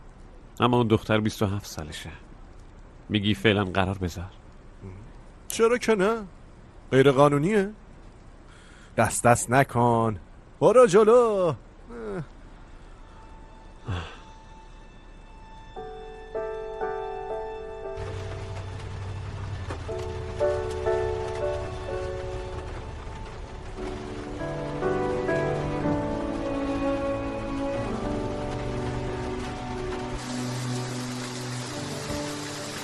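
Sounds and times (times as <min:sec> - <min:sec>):
heavy rain pouring down: 0:00.0 - 0:32.8
speech: 0:00.6 - 0:02.3, 0:03.1 - 0:07.8, 0:09.0 - 0:12.3
breathy sound: 0:11.9 - 0:14.4
soft sustained musical tones: 0:12.5 - 0:32.8.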